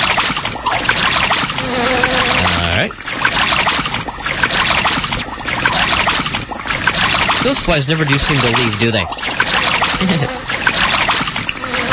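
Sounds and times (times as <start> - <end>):
video game swimming splashes in water: 0.0 - 11.9
speech: 7.7 - 9.4, 10.0 - 10.8.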